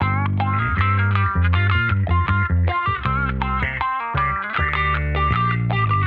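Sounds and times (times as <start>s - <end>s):
J Bass and Strat guitar and bass mix at 79 bpm, funk soul: 0.0s - 6.0s.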